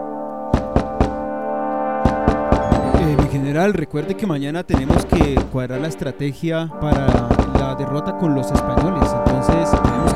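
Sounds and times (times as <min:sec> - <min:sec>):
desperate hard knocking on a door: 0:00.5 - 0:01.2, 0:02.0 - 0:03.1, 0:04.8 - 0:05.6, 0:06.9 - 0:07.8, 0:08.8 - 0:10.1
speech: 0:03.3 - 0:10.1.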